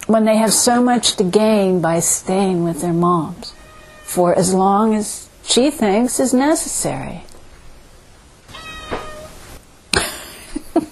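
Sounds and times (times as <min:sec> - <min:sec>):
speech: 0:00.1 - 0:07.3
cat meowing: 0:03.5 - 0:04.2, 0:08.5 - 0:09.5.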